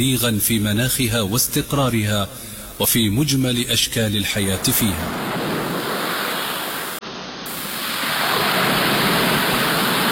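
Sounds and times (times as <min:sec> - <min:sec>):
speech: 0:00.0 - 0:05.4
sea waves roaring and surf breaking: 0:04.4 - 0:10.1.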